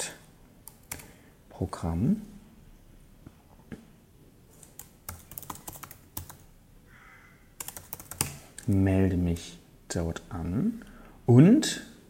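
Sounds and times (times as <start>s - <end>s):
typing on a computer keyboard at home: 0.6s - 1.1s, 4.6s - 6.5s, 7.6s - 8.8s
speech: 1.6s - 2.3s, 8.7s - 11.9s.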